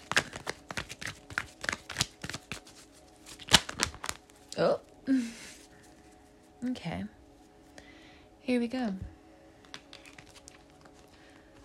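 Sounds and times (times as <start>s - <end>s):
sharp snap of playing cards: 0.0s - 2.6s, 3.4s - 4.2s
playing cards shuffled for a card reading: 0.0s - 4.4s, 9.6s - 11.6s
speech: 4.6s - 5.4s, 6.6s - 7.2s, 8.5s - 9.1s.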